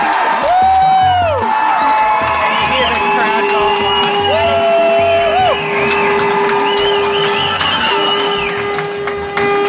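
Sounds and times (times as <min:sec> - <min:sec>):
large excited ice hockey crowd cheering and yelling in an indoor arena: 0:00.0 - 0:09.6
sustained horn-like tone droning: 0:03.1 - 0:09.6.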